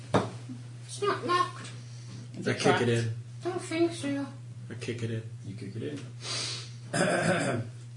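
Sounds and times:
low hum: 0.0s - 7.9s
speech: 1.0s - 1.8s, 2.4s - 7.8s
person sniffing: 6.2s - 6.8s.

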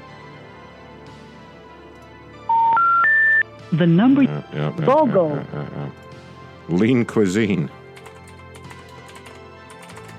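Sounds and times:
landline telephone keypad tones being dialed: 2.5s - 3.4s
speech: 3.7s - 6.1s, 6.7s - 7.8s.

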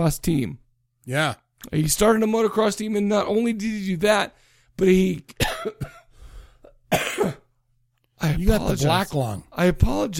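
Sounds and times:
speech: 0.0s - 6.0s, 6.9s - 7.4s, 8.2s - 10.1s
harsh raspy coughing fit: 5.3s - 7.6s.

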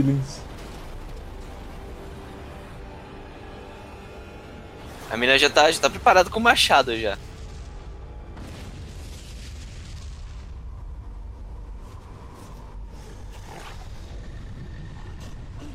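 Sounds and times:
speech: 0.0s - 0.4s, 5.1s - 7.3s
tiger or lion roaring: 12.9s - 15.7s.

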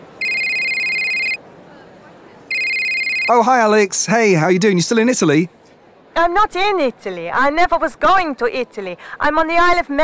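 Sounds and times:
faint hum: 0.0s - 10.0s
mobile phone ringing: 0.2s - 1.4s, 2.5s - 3.6s
speech: 3.3s - 5.6s, 6.2s - 10.0s.

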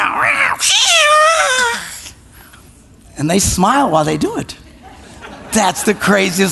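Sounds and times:
cat meowing: 0.0s - 1.8s
speech: 0.6s - 0.9s, 3.2s - 4.6s, 5.5s - 6.5s
laughter: 4.8s - 6.5s.

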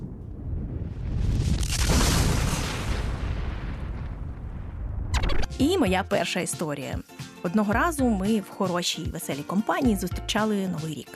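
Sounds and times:
crackling debris: 0.0s - 5.6s
firecracker explosion: 0.0s - 5.6s
speech: 5.6s - 11.1s.

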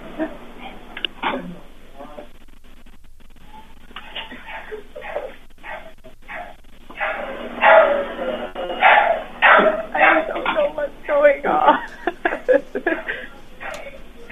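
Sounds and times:
laughter: 0.0s - 0.5s, 4.0s - 5.4s, 7.0s - 14.2s
voices: 0.0s - 14.2s
dog barking heard over a phone line: 4.0s - 8.2s, 8.8s - 10.7s, 12.9s - 14.2s.

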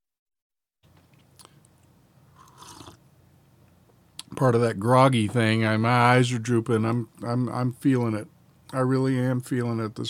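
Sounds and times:
quick sips from a drink: 1.0s - 3.1s
speech: 4.4s - 10.0s.

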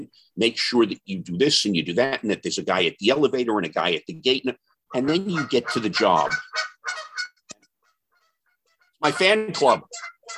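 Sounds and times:
speech: 0.0s - 7.0s, 9.0s - 10.3s
wild Canada geese honking outdoors: 4.9s - 10.3s.

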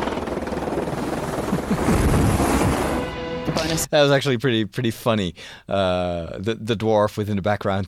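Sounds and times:
helicopter with engine wash and rotor chop passing overhead: 0.0s - 3.8s
speech: 3.8s - 7.8s.

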